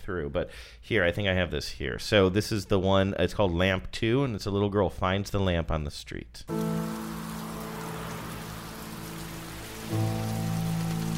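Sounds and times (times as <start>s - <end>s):
speech: 0.1s - 7.0s
steady rain pattering on a hard surface: 6.5s - 11.1s.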